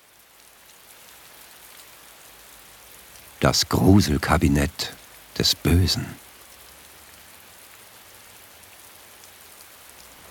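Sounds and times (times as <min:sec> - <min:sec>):
raindrops pattering densely on a surface: 0:00.0 - 0:03.4, 0:05.0 - 0:05.4, 0:06.2 - 0:10.2
steady rain falling at night: 0:00.0 - 0:10.2
speech: 0:03.4 - 0:06.2.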